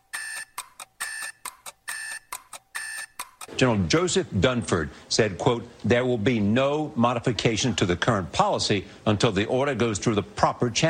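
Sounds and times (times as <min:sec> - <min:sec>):
old alarm clock ringing: 0:00.0 - 0:03.5
speech: 0:03.6 - 0:10.8.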